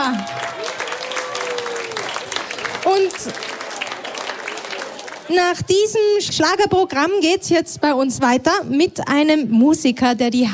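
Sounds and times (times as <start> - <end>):
audience applause after a schlager performance: 0.0 - 5.6
speech: 3.2 - 3.5, 5.3 - 10.5.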